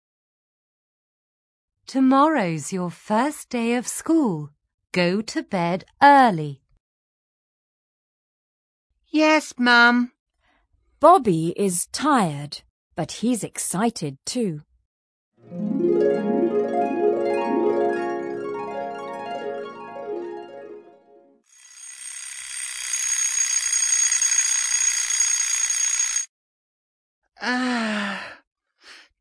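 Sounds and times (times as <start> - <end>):
speech: 1.9 - 6.6, 9.1 - 10.2, 11.0 - 14.7, 15.5 - 16.2
bright stepping electronic melody: 15.4 - 21.4
alarm clock ringing: 21.6 - 26.3.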